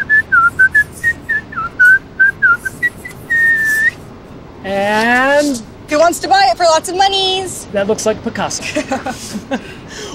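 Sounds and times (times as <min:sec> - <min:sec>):
person whistling a quick bouncy tune while writing signature: 0:00.0 - 0:04.0
speech: 0:04.9 - 0:10.1
laughter: 0:08.6 - 0:10.1.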